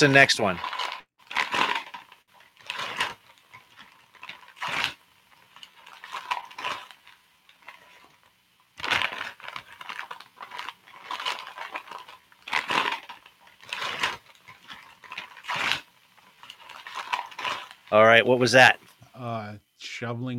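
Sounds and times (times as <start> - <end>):
speech: 0.0 - 0.8, 18.2 - 20.3
wrapping paper torn off a present: 0.0 - 19.0.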